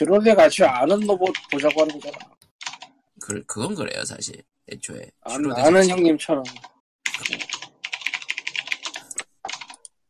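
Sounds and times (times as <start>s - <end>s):
speech: 0.0s - 2.4s, 3.2s - 7.6s
rapid keystrokes on a computer keyboard: 1.0s - 3.0s, 6.4s - 10.0s.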